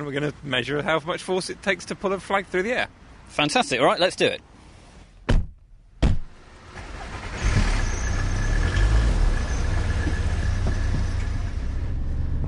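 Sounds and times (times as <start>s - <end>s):
speech: 0.0s - 4.5s
car engine and tyre noise on a road heard from inside: 0.0s - 12.4s
sharp thumps: 5.2s - 6.4s.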